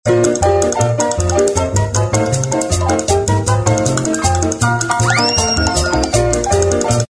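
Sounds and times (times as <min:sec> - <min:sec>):
honky tonk piano: 0:00.1 - 0:07.1.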